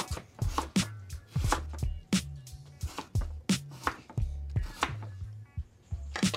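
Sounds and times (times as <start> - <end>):
knife chopping potatoes on a wooden cutting board: 0.0 - 1.9, 2.8 - 5.1.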